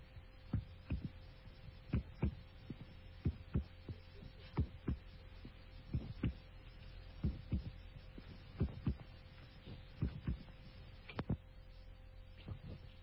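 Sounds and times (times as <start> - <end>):
low hum: 0.0 - 13.0
voice imitating a heartbeat: 0.5 - 1.2, 1.9 - 6.5, 7.2 - 7.8, 8.5 - 9.1, 9.8 - 10.6.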